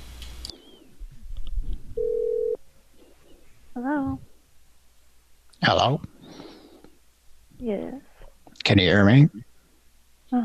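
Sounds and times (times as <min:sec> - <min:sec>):
telephone ringing during a test call: 0:02.0 - 0:02.6
speech: 0:05.7 - 0:06.1, 0:07.6 - 0:08.1, 0:08.7 - 0:09.5.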